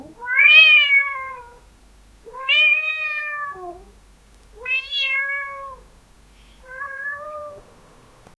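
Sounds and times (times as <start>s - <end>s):
cat meowing: 0.1s - 1.6s, 2.3s - 3.9s, 4.6s - 5.8s, 6.6s - 7.6s.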